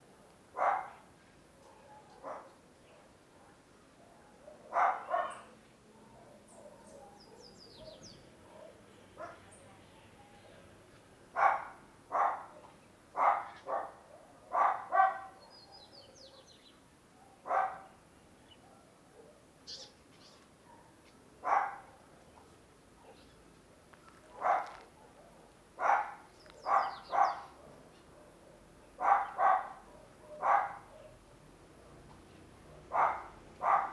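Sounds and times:
small dog barking near a corridor: 0.5 - 3.6, 4.3 - 9.5, 11.3 - 16.5, 17.2 - 18.0, 20.6 - 22.1, 24.3 - 31.4, 32.7 - 33.9.

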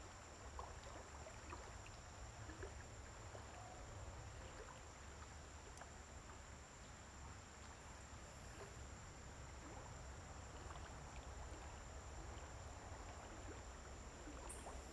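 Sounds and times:
farm stream flowing: 0.2 - 14.9
frogs croaking by a farm stream: 10.6 - 14.9.

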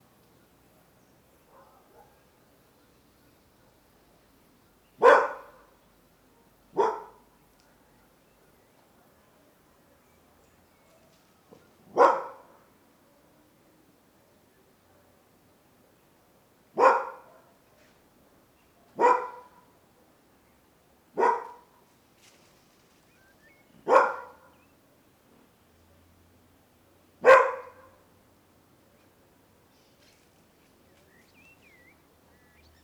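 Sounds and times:
mixed-breed dog barking: 1.5 - 2.3, 5.0 - 5.7, 6.4 - 7.3, 11.9 - 12.6, 16.8 - 17.6, 18.9 - 19.7, 21.2 - 21.7, 23.8 - 24.6, 27.2 - 28.0.

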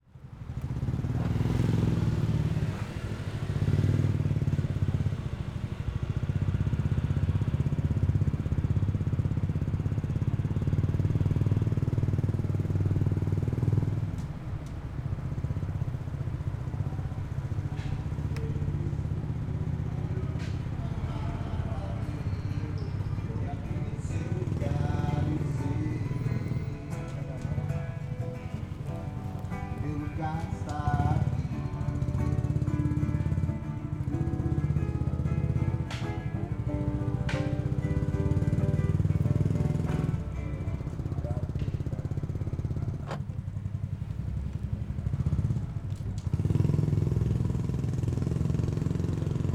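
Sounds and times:
motorcycle riding through the city at different speeds: 0.2 - 49.5
music from bars: 20.7 - 40.9.

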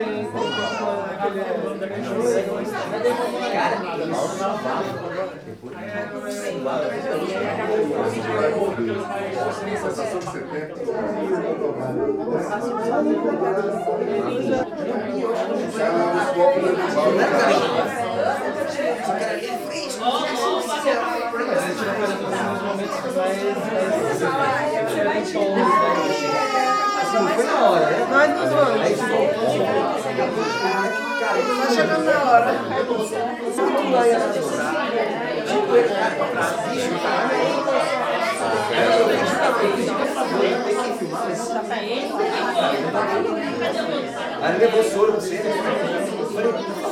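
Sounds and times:
crowd at an apartment party with many people: 0.0 - 46.9
baby screaming: 0.4 - 0.9, 25.6 - 27.4, 30.4 - 32.0.

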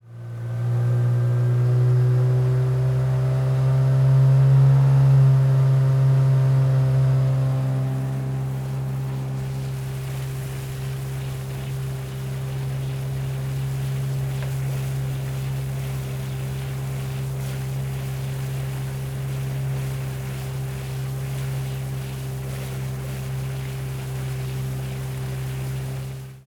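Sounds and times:
motorboat engine: 0.0 - 26.4
water slapping against a boat bow: 7.2 - 26.4.

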